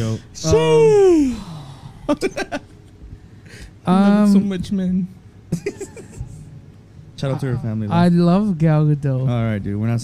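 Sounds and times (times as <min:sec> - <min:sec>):
speech: 0:00.0 - 0:01.4, 0:02.1 - 0:02.6, 0:03.9 - 0:05.9, 0:07.2 - 0:10.0
laughter: 0:02.1 - 0:02.7, 0:05.5 - 0:06.4
heavy breathing into a microphone: 0:03.2 - 0:03.8.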